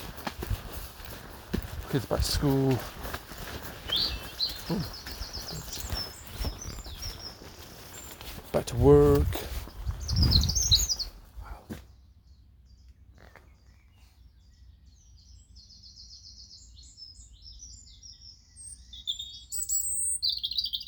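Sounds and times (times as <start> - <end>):
several birds chirping and trilling: 0.0 - 20.8
speech: 1.9 - 3.0, 4.7 - 5.0, 8.6 - 9.5.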